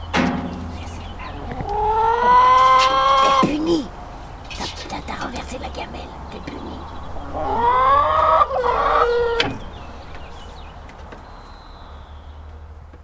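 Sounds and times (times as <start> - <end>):
faint background hum: 0.0 - 13.0
hen giving a long rising nasal cackle: 1.0 - 3.9, 7.1 - 9.7.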